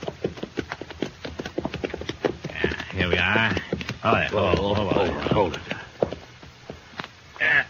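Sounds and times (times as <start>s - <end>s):
horses' hooves clip-clopping: 0.0s - 7.4s
speech: 3.0s - 5.7s.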